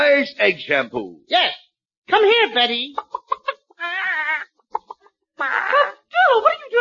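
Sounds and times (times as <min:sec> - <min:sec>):
speech: 0:00.3 - 0:03.2, 0:05.4 - 0:06.7
human voice imitating chicken clucking and squawking: 0:02.9 - 0:05.1.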